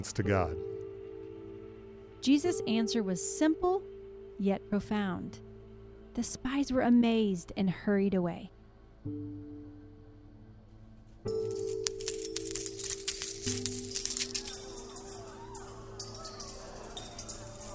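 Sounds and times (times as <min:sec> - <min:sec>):
speech: 0:00.0 - 0:00.7, 0:02.2 - 0:05.4, 0:06.2 - 0:09.7
many coins pouring out of large sacks into a temple treasury: 0:11.5 - 0:14.5.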